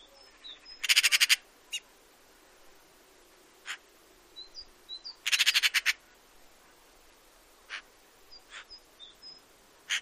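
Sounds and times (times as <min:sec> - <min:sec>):
Eurasian magpie chattering rattle: 0:00.8 - 0:01.8, 0:05.2 - 0:06.0.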